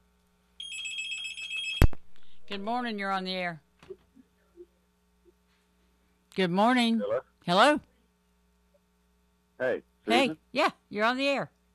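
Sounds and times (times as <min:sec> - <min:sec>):
faint hum: 0:00.0 - 0:11.7
telephone ringing with high electronic trill for incoming call: 0:00.6 - 0:01.9
speech: 0:02.5 - 0:04.0, 0:06.4 - 0:07.9, 0:09.6 - 0:11.6.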